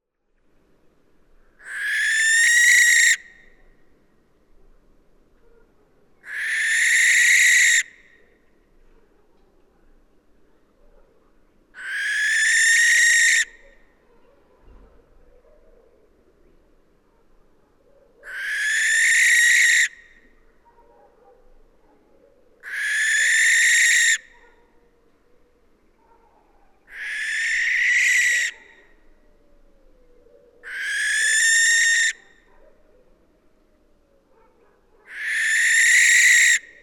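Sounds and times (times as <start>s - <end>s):
Western Barn Owl Tyto alba: 1.6s - 3.6s, 6.2s - 7.9s, 11.8s - 13.9s, 18.1s - 20.4s, 22.4s - 24.8s, 26.1s - 33.2s, 34.0s - 36.8s.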